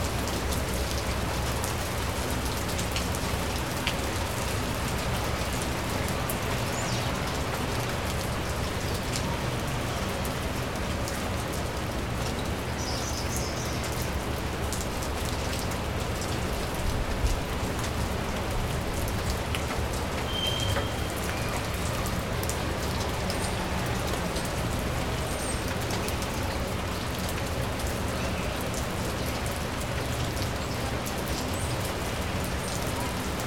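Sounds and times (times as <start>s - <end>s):
fairly heavy rain under a shop awning: 0.0s - 33.4s
faint brighter chirps or drips: 20.2s - 21.8s.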